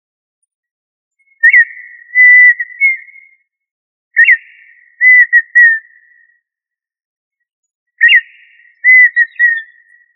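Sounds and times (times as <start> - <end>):
tinamou whistled calls: 1.3 - 3.4, 4.2 - 6.1, 8.0 - 9.9.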